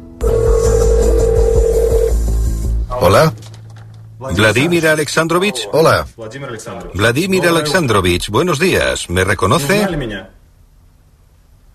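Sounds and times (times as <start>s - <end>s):
loud steady electronic telephone tone of a call going through: 0.2s - 2.3s
speech: 3.0s - 3.4s, 4.2s - 10.4s.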